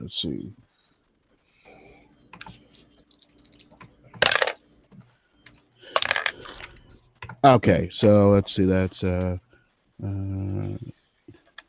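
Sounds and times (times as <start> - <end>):
speech: 0.1 - 0.6, 7.4 - 9.4, 10.0 - 11.0
dice being rolled, clattering across a hard surface: 2.7 - 4.6.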